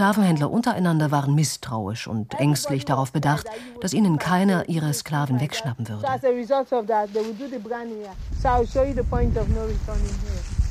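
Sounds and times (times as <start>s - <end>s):
speech: 0.0s - 10.6s
low blustery wind on a beach: 2.3s - 10.6s.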